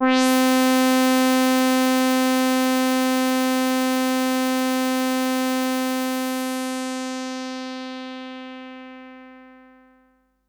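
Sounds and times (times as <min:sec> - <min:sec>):
simple synth wave: 0:00.0 - 0:07.3.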